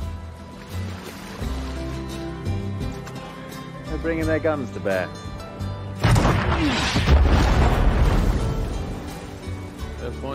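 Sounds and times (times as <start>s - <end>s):
speech: 4.0s - 5.3s, 6.5s - 7.4s, 10.0s - 10.3s
large explosive charge set with a long fuse detonating: 6.0s - 9.0s.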